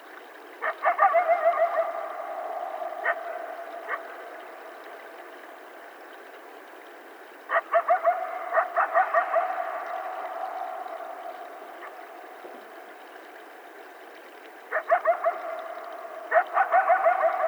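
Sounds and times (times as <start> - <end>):
coyotes howling: 0.6 - 5.3, 7.5 - 12.3, 14.7 - 17.4.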